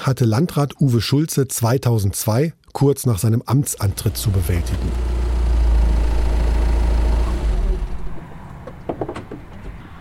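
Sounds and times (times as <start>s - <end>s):
speech: 0.0s - 5.2s
car pulling up at an entrance with engine rumbling: 3.8s - 8.6s.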